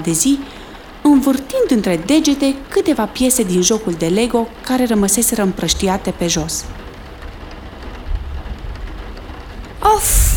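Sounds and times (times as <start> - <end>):
speech: 0.0 - 6.9
heavy autumn rain drumming on surfaces: 0.0 - 10.3
low rumble: 6.6 - 10.3.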